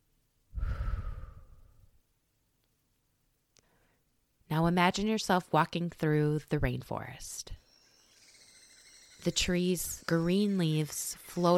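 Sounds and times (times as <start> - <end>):
deep breath: 0.5 - 2.0, 3.6 - 4.1
speech: 4.6 - 7.6, 9.2 - 11.5.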